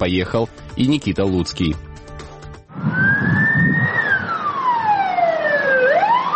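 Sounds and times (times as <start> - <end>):
speech: 0.0 - 1.9
emergency vehicle siren wailing: 2.7 - 6.3.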